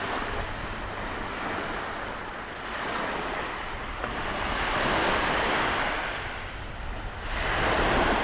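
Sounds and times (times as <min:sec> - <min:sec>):
gusty wind blowing over sea waves: 0:00.0 - 0:08.2
sea waves surging: 0:00.0 - 0:08.2.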